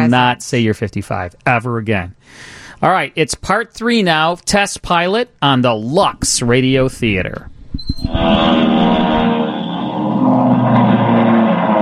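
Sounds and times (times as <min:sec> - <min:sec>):
speech: 0:00.1 - 0:08.8
race car engines roaring on a track straightaway: 0:08.2 - 0:11.7.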